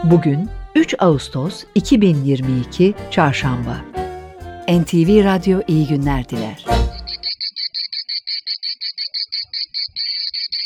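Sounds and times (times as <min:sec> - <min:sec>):
speech: 0:00.0 - 0:03.9, 0:04.7 - 0:06.9
cicada chirping: 0:06.9 - 0:10.6.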